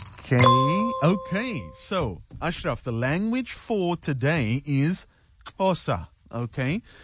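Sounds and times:
speech: 0.3s - 7.0s
prize wheel pointer ticking: 0.4s - 1.9s.

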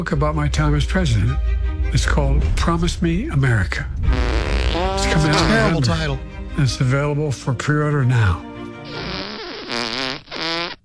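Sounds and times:
speech: 0.0s - 4.3s, 5.1s - 9.1s
loud drawn-out fart: 4.0s - 5.8s, 8.8s - 10.8s.

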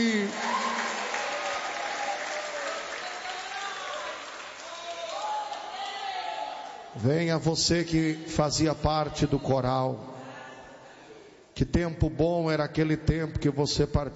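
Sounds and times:
audience applauding: 0.0s - 6.2s
raised voices and cheers: 0.0s - 6.9s
speech: 7.0s - 10.1s, 11.6s - 14.1s.

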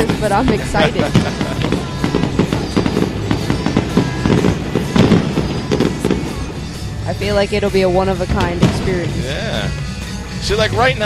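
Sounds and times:
speech: 0.0s - 2.2s, 7.2s - 11.0s
laughter: 0.0s - 2.4s
fireworks bangs and crackles: 0.0s - 11.0s.

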